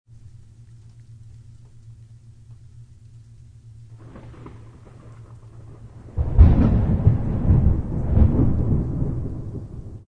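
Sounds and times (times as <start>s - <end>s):
thunderstorm: 3.9s - 10.0s.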